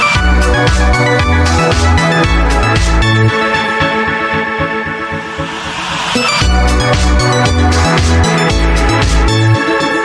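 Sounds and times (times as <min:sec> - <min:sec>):
Nokia SMS ringtone melody: 0:00.2 - 0:10.0.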